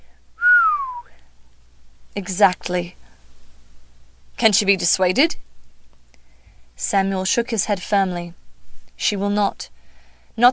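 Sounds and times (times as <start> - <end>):
low human whistle sliding downward in pitch: 0.4 - 1.1
speech: 2.2 - 3.0, 4.4 - 5.4, 6.8 - 8.4, 9.0 - 9.7, 10.4 - 10.5.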